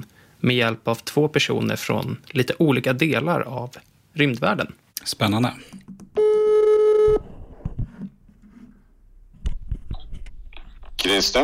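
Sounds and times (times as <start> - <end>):
speech: 0.0 - 5.9, 11.0 - 11.4
outgoing phone call ringback tone: 6.2 - 7.2.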